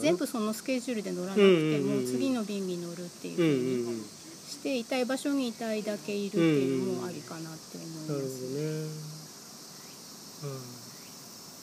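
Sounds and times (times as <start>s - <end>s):
speech: 0.0s - 9.1s, 10.4s - 10.8s
many kinds of cicadas singing: 0.0s - 11.6s
person murmuring: 1.4s - 2.4s, 3.4s - 4.1s, 6.4s - 7.3s, 8.1s - 9.2s, 10.4s - 10.8s.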